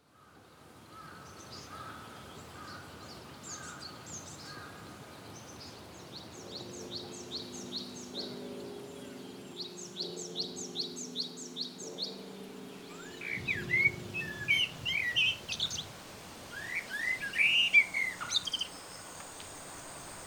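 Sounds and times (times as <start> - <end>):
ambient sound: 6.5 - 20.2.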